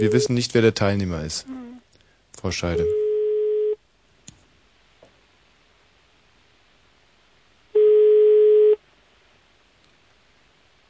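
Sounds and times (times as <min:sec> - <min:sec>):
speech: 0:00.0 - 0:01.6, 0:02.4 - 0:03.0
telephone line tone while a call is being connected: 0:02.8 - 0:03.8, 0:07.8 - 0:08.8.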